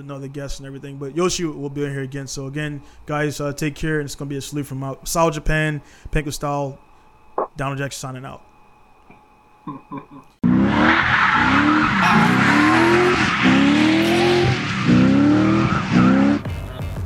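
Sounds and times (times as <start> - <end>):
speech: 0.0 - 6.9, 7.6 - 8.5, 9.6 - 13.7
1989 BMW 325 LS2 swapped engine revving: 10.4 - 16.5
tire squeal from a 1989 BMW 325 with an LS2 engine swap: 10.4 - 16.5.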